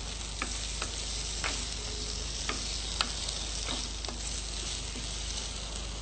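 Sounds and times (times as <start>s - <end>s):
potatoes sizzling while frying in a kadai over a full gas flame: 0.0s - 6.0s.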